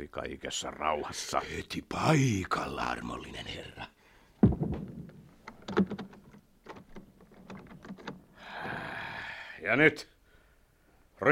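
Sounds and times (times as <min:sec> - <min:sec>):
speech: 0:00.0 - 0:04.6, 0:05.8 - 0:06.0, 0:09.6 - 0:10.1
door swinging shut with a solid thud: 0:04.4 - 0:08.2
clattering clicks and knocks from the door latch and handle: 0:05.4 - 0:08.3.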